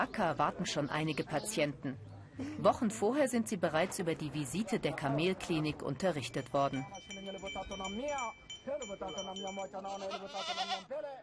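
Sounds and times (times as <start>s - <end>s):
speech: 0.0s - 11.2s
goats bleating at a goat auction in Kenya: 9.8s - 10.9s.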